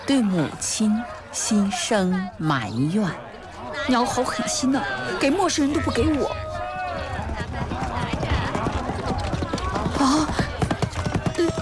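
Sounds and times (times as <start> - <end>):
speech: 0.1 - 6.5
galloping horse-drawn carriage racing along a street: 5.6 - 11.6.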